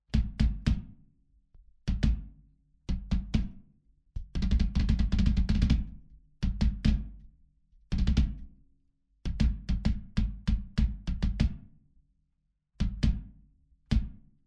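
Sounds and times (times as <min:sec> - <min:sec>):
20 by 16 inch bass drum in stereo: 0:00.1 - 0:01.0, 0:01.9 - 0:02.3, 0:02.9 - 0:03.6, 0:04.2 - 0:07.2, 0:09.3 - 0:11.6, 0:12.8 - 0:14.2.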